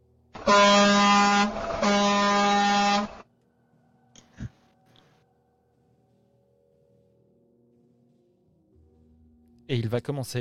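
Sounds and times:
vehicle horn honking: 0.4 - 3.2
speech: 0.5 - 2.0, 9.7 - 10.3.

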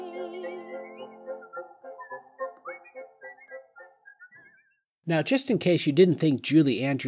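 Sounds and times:
person whistling imitating birdsong with trills: 0.1 - 4.9
speech: 5.1 - 7.0.

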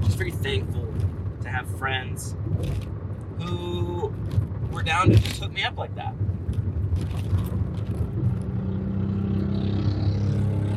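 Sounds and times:
speech: 0.1 - 6.4, 6.9 - 7.6
loud motorcycle engine passing: 8.2 - 10.7.

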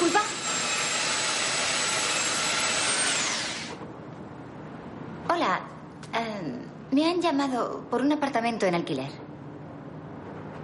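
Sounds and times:
floor sander worked by a man over a floor: 0.0 - 3.8
speech: 7.0 - 9.2.

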